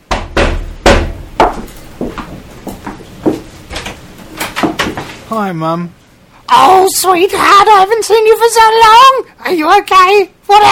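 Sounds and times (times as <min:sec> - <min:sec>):
knocking on a wooden door: 0:00.0 - 0:02.2
speech: 0:05.3 - 0:10.7.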